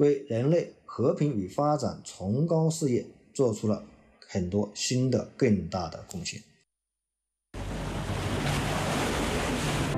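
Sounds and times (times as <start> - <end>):
speech: 0.0 - 6.5
loud ocean surf washing onto the shore: 7.6 - 9.9.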